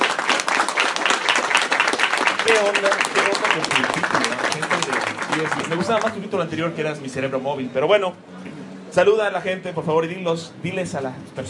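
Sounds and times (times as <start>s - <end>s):
audience applauding a guest at a comics presentation: 0.0s - 6.4s
speech: 2.5s - 4.8s, 5.4s - 8.4s, 9.0s - 11.4s.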